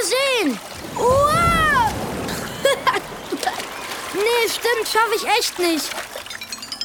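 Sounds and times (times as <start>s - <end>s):
smaller water splashes: 0.0s - 6.8s
wave crashing during a storm: 0.8s - 4.5s
speech: 4.5s - 6.0s.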